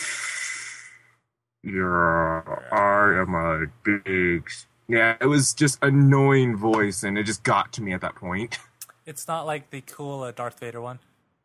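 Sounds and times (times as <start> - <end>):
person imitating a sports coach's heavy breathing: 0.0 - 1.0
speech: 1.6 - 11.1.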